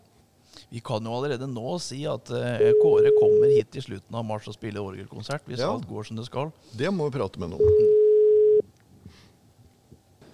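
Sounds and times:
speech: 0:00.7 - 0:07.9
electronic ringback tone of an outgoing phone call: 0:02.6 - 0:03.6, 0:07.6 - 0:08.6.

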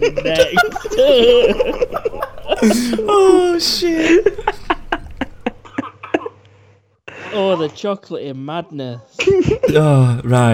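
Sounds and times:
speech: 0:00.0 - 0:04.3, 0:07.8 - 0:10.5
laughter: 0:00.0 - 0:06.4
harsh coughing fit: 0:02.6 - 0:03.1, 0:05.6 - 0:06.4.

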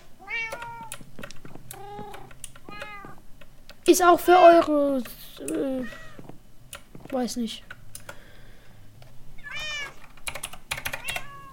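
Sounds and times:
cat meowing: 0:00.2 - 0:01.0, 0:01.7 - 0:03.2, 0:09.4 - 0:10.0, 0:11.0 - 0:11.5
keyboard typing clicks: 0:00.4 - 0:04.0, 0:06.7 - 0:08.2, 0:10.0 - 0:11.3
speech: 0:03.9 - 0:06.0, 0:07.1 - 0:07.7.

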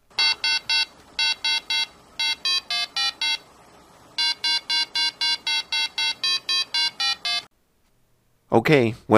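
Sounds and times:
rapid electronic beeps from a 1970s Parker Brothers Merlin handheld game: 0:00.2 - 0:03.4, 0:04.2 - 0:07.5
speech: 0:08.6 - 0:09.1.

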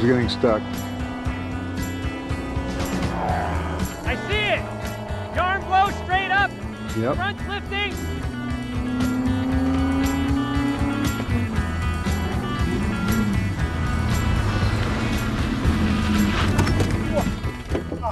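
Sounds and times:
speech: 0:00.0 - 0:00.9, 0:06.0 - 0:08.4
race car engine roaring at high speed: 0:00.0 - 0:18.0
indistinct voices: 0:03.0 - 0:08.1.

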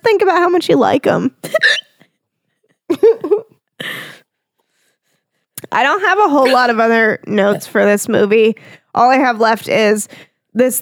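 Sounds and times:
speech: 0:00.1 - 0:01.8, 0:05.7 - 0:10.8
person hiccuping: 0:01.4 - 0:02.0.

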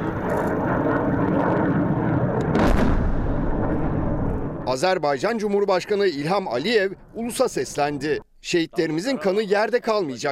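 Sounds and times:
artillery bombardment rumble from army counter-fire: 0:00.0 - 0:05.0
loud artillery blast: 0:00.1 - 0:04.8
speech: 0:04.7 - 0:10.3.

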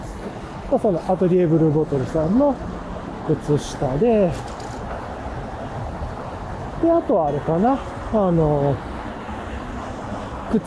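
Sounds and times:
low rumbling traffic from a main road: 0:00.0 - 0:10.6
speech: 0:00.7 - 0:04.6, 0:06.8 - 0:08.9.

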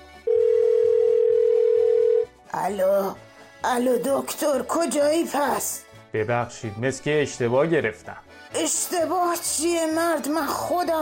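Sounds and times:
telephone call tone: 0:00.3 - 0:02.3
speech: 0:02.6 - 0:11.0.

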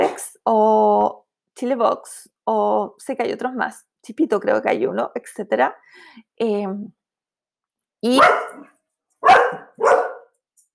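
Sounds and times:
speech: 0:00.5 - 0:07.0, 0:08.0 - 0:09.4
dog barking: 0:08.2 - 0:10.4.

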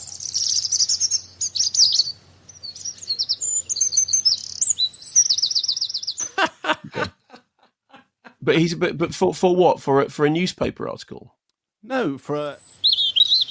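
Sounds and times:
birdsong sound effect censoring speech: 0:00.0 - 0:07.4, 0:12.3 - 0:13.4
laughter: 0:06.2 - 0:08.8
speech: 0:08.5 - 0:12.6.

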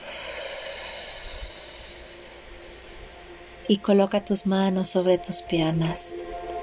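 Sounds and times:
long steady exhale after a deep breath in a guided meditation: 0:00.0 - 0:03.0
speech: 0:03.7 - 0:06.5.

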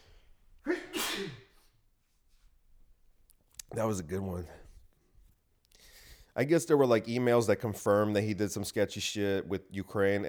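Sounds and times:
loud sneeze: 0:00.6 - 0:01.7
speech: 0:03.7 - 0:04.6, 0:06.4 - 0:10.2.

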